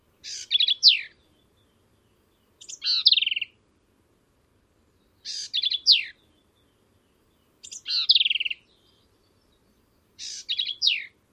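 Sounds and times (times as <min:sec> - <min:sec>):
Black-capped Vireo song: 0:00.0 - 0:03.6, 0:04.6 - 0:11.3.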